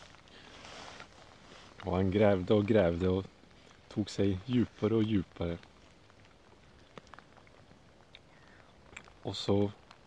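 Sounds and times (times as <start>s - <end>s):
rain falling: 0.0s - 10.0s
speech: 1.8s - 5.7s, 9.2s - 9.8s.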